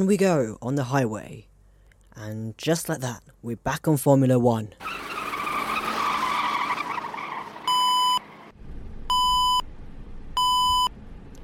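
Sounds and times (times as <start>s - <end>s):
speech: 0.0s - 1.5s, 2.2s - 5.1s
road and engine rumble on the highway: 4.8s - 11.4s
minibus speed warning beeps: 7.7s - 8.2s, 9.1s - 9.6s, 10.4s - 10.9s.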